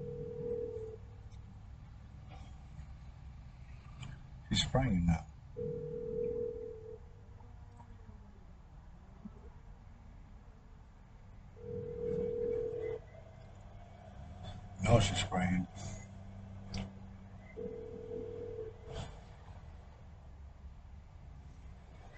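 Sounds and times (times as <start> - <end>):
phone ringing with sustained electronic tone: 0.0 - 1.0, 5.6 - 7.0, 11.6 - 13.1, 17.6 - 19.1
person speaking quietly: 4.5 - 5.2, 14.8 - 16.1
speech: 4.5 - 5.7.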